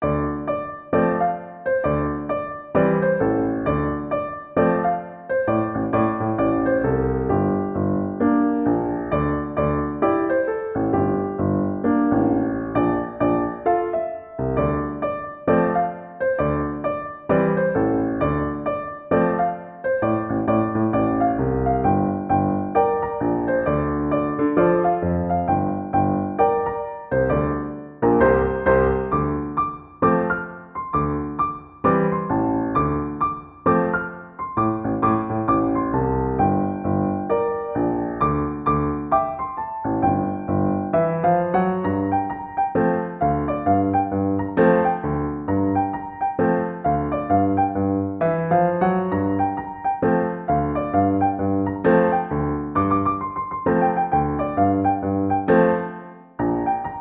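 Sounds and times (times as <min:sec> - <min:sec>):
hip hop house piano: 0:00.0 - 0:56.9.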